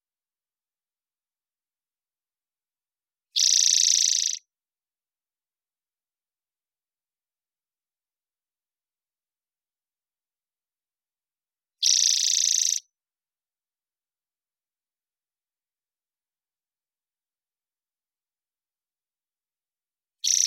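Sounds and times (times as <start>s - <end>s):
spotted towhee singing buzzy trills in the Pacific Northwest, Washington, United States: 3.4s - 4.4s, 11.8s - 12.8s, 20.2s - 20.4s.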